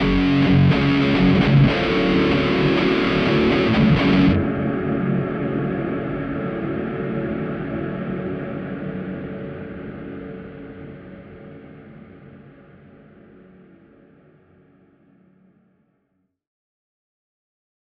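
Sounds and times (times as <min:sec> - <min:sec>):
guitar effect: 0:00.0 - 0:11.0.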